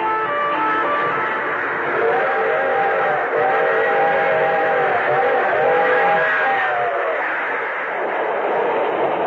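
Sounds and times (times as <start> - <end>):
freight train cars rolling along the railroad: 0.0 - 9.2.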